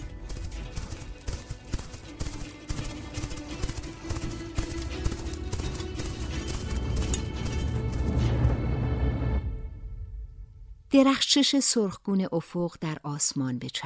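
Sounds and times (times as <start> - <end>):
horse hooves galloping: 0.0 - 8.7
speech: 11.0 - 13.8.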